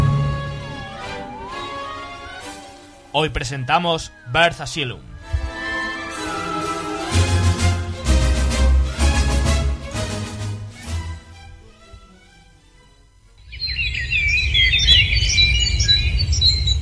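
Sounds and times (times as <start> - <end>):
upbeat music: 0.0 - 12.5
many birds chirping and squawking in an aviary: 0.6 - 7.0, 13.4 - 16.8
speech: 3.1 - 5.1.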